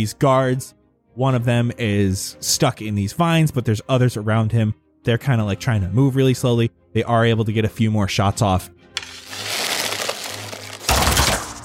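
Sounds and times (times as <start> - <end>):
speech: 0.0 - 9.3
body crashing onto ground: 10.8 - 11.6.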